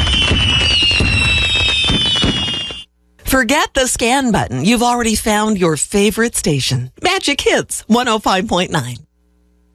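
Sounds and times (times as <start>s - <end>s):
fireworks exploding in a crackling barrage: 0.0s - 2.9s
whistling rockets streaking high above: 0.0s - 2.9s
speech: 3.4s - 9.1s.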